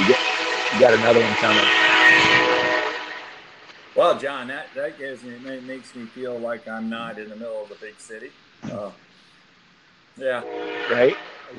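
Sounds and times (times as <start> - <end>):
railroad train horn-like tonal blare: 0.0 - 3.6, 10.2 - 11.5
railroad train rumbling past: 0.0 - 7.5, 10.2 - 11.5
speech: 0.1 - 2.3, 4.0 - 9.0, 10.2 - 11.5.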